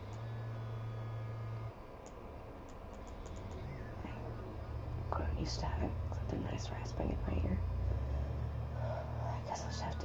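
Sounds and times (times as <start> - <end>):
faint ticks: 0.0 - 0.4, 2.0 - 3.7
low droning buzz: 0.0 - 10.0
road traffic rumbling: 3.3 - 10.0
speech: 5.4 - 7.7, 9.5 - 10.0.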